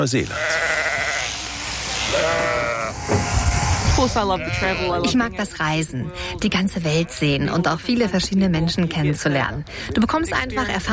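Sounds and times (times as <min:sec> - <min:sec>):
speech: 0:00.0 - 0:00.6, 0:04.0 - 0:10.9
sheep bleating while held for shearing: 0:00.2 - 0:05.2.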